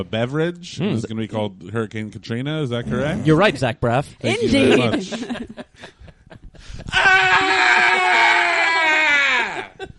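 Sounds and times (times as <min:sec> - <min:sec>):
speech: 0:00.0 - 0:06.0
laughter: 0:04.3 - 0:09.9
man screaming: 0:06.9 - 0:09.8.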